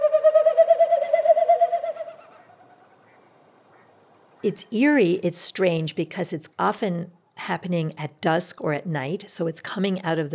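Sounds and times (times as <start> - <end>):
robin-sized small bird whistling display call overhead: 0.0 - 4.5
speech: 4.4 - 10.3.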